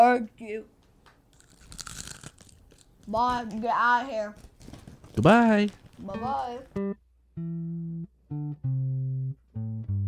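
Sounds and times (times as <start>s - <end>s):
speech: 0.1s - 0.8s, 3.1s - 4.5s, 5.2s - 9.9s
barbecue-flavored potato chip being bitten: 1.3s - 3.2s.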